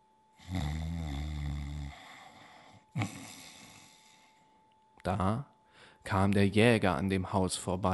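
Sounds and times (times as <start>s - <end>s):
loud rumbling snore: 0.4s - 2.4s, 3.0s - 4.2s
speech: 5.0s - 7.9s.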